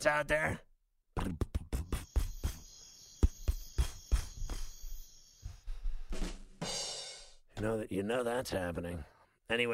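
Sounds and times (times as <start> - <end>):
speech: 0.0 - 1.4, 7.6 - 9.7
sharp rhythmic clicking pulses: 1.4 - 5.4
cricket chirping: 2.0 - 5.5.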